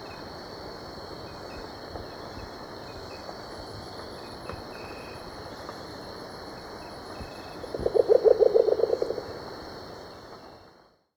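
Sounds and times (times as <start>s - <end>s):
Band-bellied owl hooting in Ecuador: 7.7s - 9.2s.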